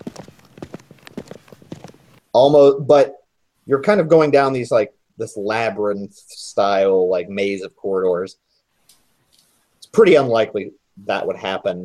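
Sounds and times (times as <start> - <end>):
footsteps clacking on a hard floor: 0.0 - 2.2
speech: 2.4 - 8.4, 9.9 - 11.8.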